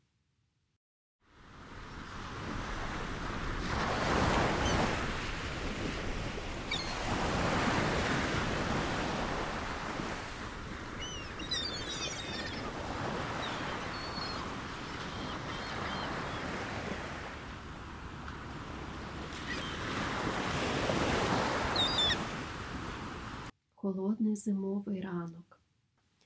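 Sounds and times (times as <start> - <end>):
sea waves breaking on shore: 1.3 - 23.5
faint bird calls: 10.8 - 16.6, 21.7 - 22.2
speech: 23.9 - 25.4.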